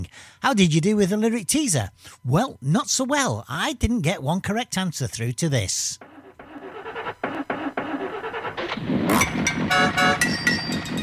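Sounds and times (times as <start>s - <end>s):
speech: 0.0s - 6.1s
harsh metallic rattling: 6.0s - 11.0s
old car engine cranking and struggling to start: 6.0s - 11.0s.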